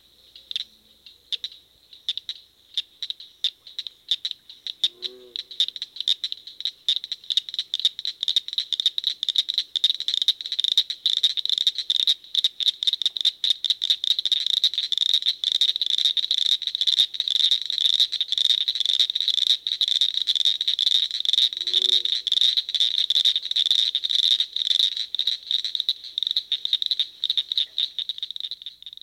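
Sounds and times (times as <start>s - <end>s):
northern cricket frog metallic clicking call series: 0.0s - 29.0s.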